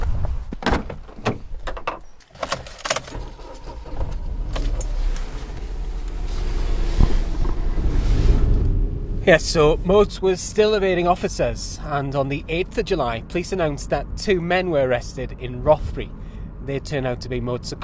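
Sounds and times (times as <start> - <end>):
wind noise: 0.0 - 1.9, 3.2 - 11.2
clunks and rustles of someone climbing into a car: 0.0 - 8.8
car door shutting: 0.6 - 8.8
low car engine rumble: 3.1 - 17.8
speech: 9.3 - 17.8.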